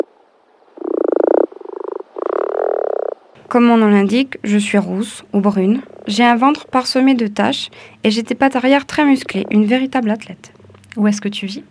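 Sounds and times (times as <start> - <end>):
common frog Rana temporaria croaking: 0.8 - 11.4
speech: 3.5 - 11.6.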